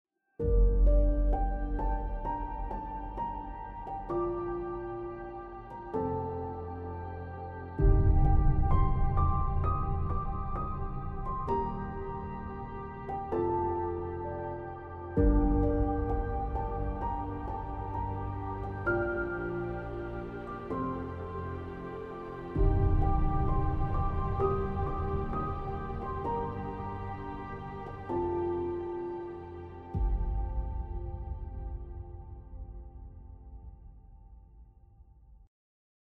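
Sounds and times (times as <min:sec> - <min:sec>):
atmospheric piano: 0:00.4 - 0:34.8
booms: 0:07.8 - 0:13.4, 0:15.2 - 0:20.4, 0:22.5 - 0:28.5, 0:29.9 - 0:34.8.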